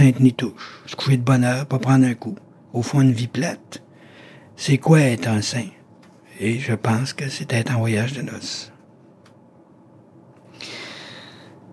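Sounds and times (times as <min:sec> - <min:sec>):
speech: 0:00.0 - 0:03.8, 0:04.6 - 0:05.8, 0:06.4 - 0:08.7
deep inhaled breath: 0:03.9 - 0:04.5, 0:10.5 - 0:11.6.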